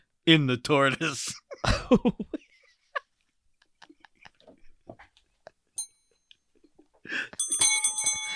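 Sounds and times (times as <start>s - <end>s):
speech: 0.3s - 2.4s
laughter: 0.9s - 5.7s
bright metallic bell ringing: 5.8s - 6.2s, 7.4s - 8.3s.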